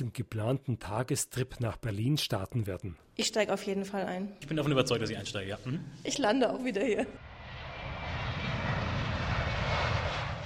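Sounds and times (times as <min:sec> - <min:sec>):
speech: 0:00.0 - 0:07.2
passenger plane engines roaring during a flight: 0:07.2 - 0:10.4.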